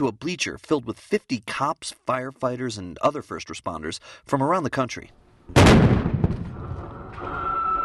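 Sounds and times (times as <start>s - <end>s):
speech: 0.0s - 6.1s
explosion detonated during SWAT training exercise: 5.5s - 7.7s.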